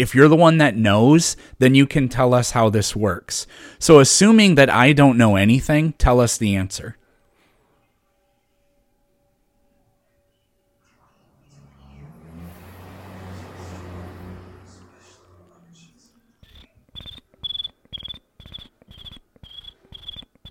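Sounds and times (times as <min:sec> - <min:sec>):
speech: 0:00.0 - 0:07.0
vehicle rumbling past: 0:10.8 - 0:16.6
cricket chirping: 0:16.4 - 0:20.4.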